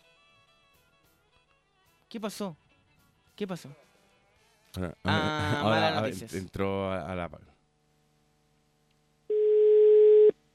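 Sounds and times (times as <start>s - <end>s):
speech: 2.1s - 2.6s, 3.4s - 3.9s, 4.7s - 7.6s
telephone line tone while a call is being placed: 9.3s - 10.3s.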